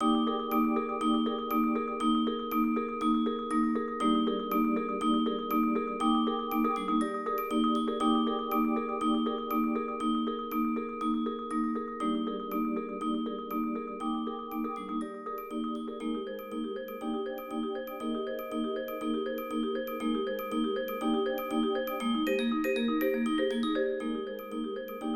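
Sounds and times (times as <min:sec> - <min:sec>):
bells in a percussion ensemble: 0:00.0 - 0:25.1
marimba in a percussion ensemble: 0:00.0 - 0:25.1
vibraphone in a percussion ensemble: 0:00.0 - 0:25.1
xylophone in a percussion ensemble: 0:00.0 - 0:25.1.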